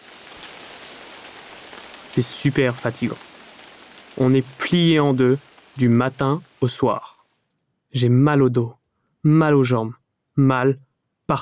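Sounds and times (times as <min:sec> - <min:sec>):
steady rain pouring: 0:00.0 - 0:07.4
speech: 0:02.1 - 0:03.3, 0:04.2 - 0:07.2, 0:07.9 - 0:11.3.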